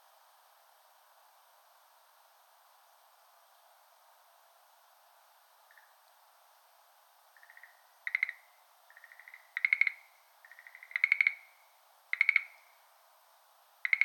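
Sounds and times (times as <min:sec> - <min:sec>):
steady faint hiss: 0:00.0 - 0:14.0
Schlegel's green tree frog calling in rattling trills: 0:05.7 - 0:06.0, 0:07.4 - 0:12.7, 0:13.8 - 0:14.0.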